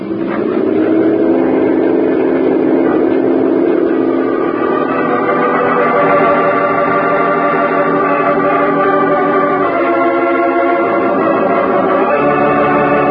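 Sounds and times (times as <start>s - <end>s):
motorboat engine on a river roaring at full speed: 0.0s - 13.0s.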